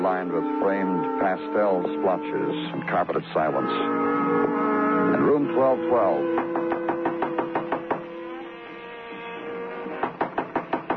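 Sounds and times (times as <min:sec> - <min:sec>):
faint jazz from a radio: 0:00.0 - 0:06.4
speech: 0:00.0 - 0:06.5
quick firm knocks on a hotel room door on the 12th floor: 0:06.2 - 0:08.2, 0:09.8 - 0:10.9.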